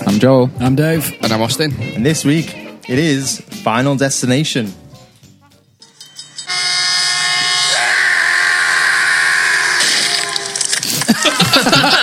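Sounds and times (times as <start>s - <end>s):
speech: 0.2s - 4.8s
train horn sound effect blast: 6.5s - 10.7s
laughter: 10.8s - 12.0s.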